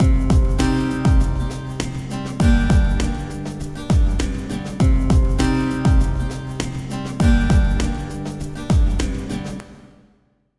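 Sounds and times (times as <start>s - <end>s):
dancehall acoustic guitar: 0.0s - 10.1s
dancehall drums: 0.0s - 10.2s.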